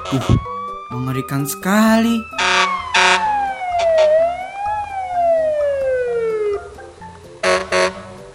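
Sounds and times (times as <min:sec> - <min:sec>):
fire engine siren wailing at a burning house: 0:00.0 - 0:06.6
speech: 0:00.1 - 0:02.4
harsh fire engine horn blasts: 0:02.3 - 0:03.2, 0:07.4 - 0:08.1.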